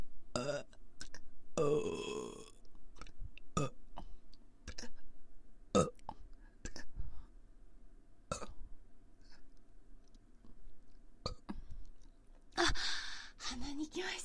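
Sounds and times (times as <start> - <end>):
person burping after drinking carbonated water: 0.4 - 2.6, 3.6 - 3.8, 5.7 - 6.9, 8.3 - 8.6, 11.2 - 11.6
person gulping: 0.4 - 5.0, 5.8 - 6.9, 8.3 - 8.6, 11.2 - 12.1
person breathing: 6.4 - 7.4, 12.6 - 13.4.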